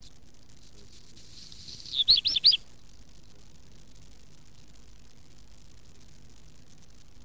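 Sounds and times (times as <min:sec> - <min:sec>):
redstart warbling: 0:01.2 - 0:02.6.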